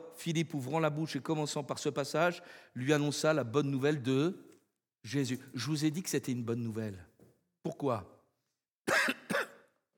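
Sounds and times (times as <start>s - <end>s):
speech: 0.2s - 8.1s
person coughing with a tickle in the throat: 8.9s - 9.7s
throat clearing: 8.9s - 9.7s.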